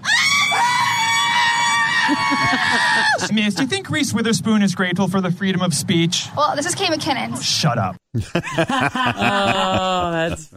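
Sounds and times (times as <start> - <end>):
audience of women cheering and screaming: 0.0 - 3.3
laughter: 2.0 - 4.0, 8.2 - 10.5
speech: 2.1 - 10.5.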